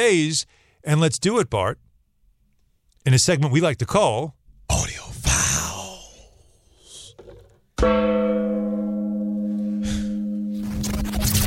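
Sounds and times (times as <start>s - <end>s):
speech: 0.0s - 1.9s, 3.0s - 5.1s
gong struck with deep shimmering tone: 7.8s - 10.6s
bursts of rustling noise: 10.5s - 11.4s.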